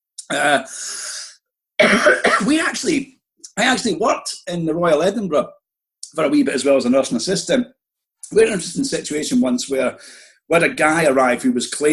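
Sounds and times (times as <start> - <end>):
speech: 0.3 - 1.0, 1.8 - 11.9
person coughing with rasping throat-clearing: 1.8 - 2.6.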